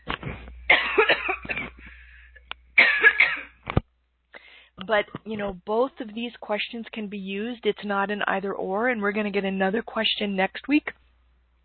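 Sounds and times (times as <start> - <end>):
person coughing: 0.7 - 2.0, 2.8 - 3.6
speech: 4.9 - 11.0.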